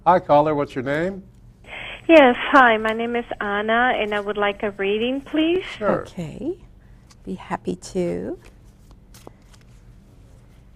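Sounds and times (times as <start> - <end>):
speech: 0.0 - 1.3, 2.1 - 8.5
tarot reading cards being shuffled: 8.4 - 9.8.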